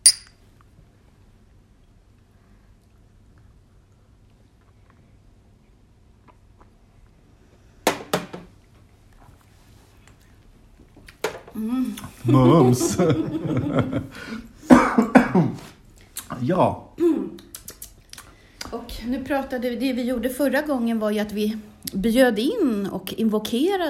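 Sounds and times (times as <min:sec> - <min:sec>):
glasses clinking in a toast: 0:00.0 - 0:00.4
quiet hum: 0:00.0 - 0:07.8, 0:08.5 - 0:23.8
speech: 0:11.6 - 0:14.4, 0:16.4 - 0:16.8, 0:19.1 - 0:23.8
laughter: 0:12.2 - 0:14.4.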